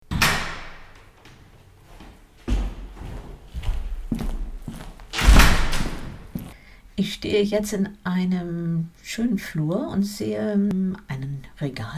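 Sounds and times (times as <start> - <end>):
door of half-timbered house built in 1858 creaking open: 0.1 - 6.6
bumps as someone steps into a hallway: 0.1 - 7.7
footsteps stepping into a hallway: 0.4 - 7.8
speech: 7.0 - 11.9.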